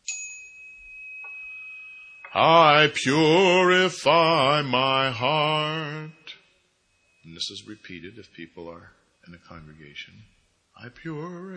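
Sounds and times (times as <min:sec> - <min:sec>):
single struck bell ringing during a spiritual practice with hand mudras: 0:00.0 - 0:03.0, 0:05.4 - 0:09.7
speech: 0:02.3 - 0:06.2, 0:07.3 - 0:11.5.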